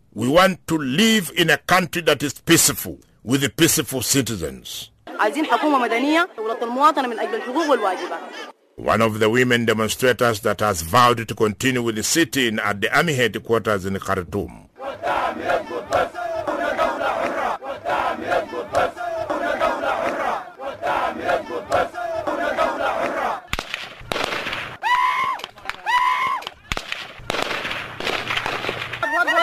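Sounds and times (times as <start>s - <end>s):
speech: 0.2s - 16.2s
laughter: 5.1s - 8.6s, 25.3s - 26.8s, 29.0s - 29.4s
crowd shouting and chanting: 5.1s - 8.7s, 14.7s - 23.6s
gunshots: 23.5s - 24.8s, 26.5s - 29.1s.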